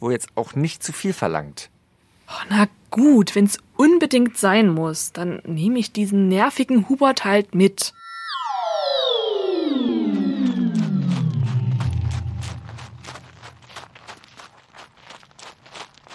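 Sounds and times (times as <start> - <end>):
speech: 0.0 - 1.7, 2.3 - 8.0
descending whoosh: 8.0 - 13.9
footsteps of a person walking briskly for exercise: 11.2 - 16.1.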